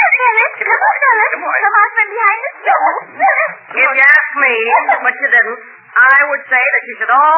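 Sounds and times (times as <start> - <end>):
dog yelping whining and barking: 0.0 - 1.3, 2.3 - 3.7, 4.6 - 5.2
speech: 1.3 - 7.3.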